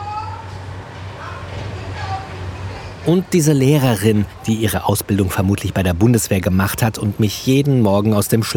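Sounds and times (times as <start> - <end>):
children's voices chattering and calling out from a primary school: 0.0 - 5.4
steady low hum of noise: 0.0 - 8.5
speech: 3.1 - 8.5.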